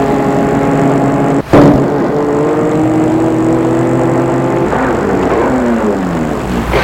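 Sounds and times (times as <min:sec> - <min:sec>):
car driving past and stopping: 0:00.0 - 0:06.7.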